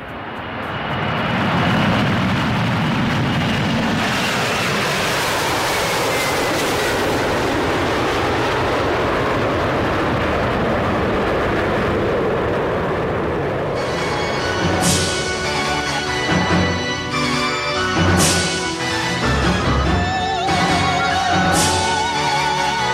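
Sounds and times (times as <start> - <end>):
airplane taking off with broad engine roar: 0.0 - 22.9.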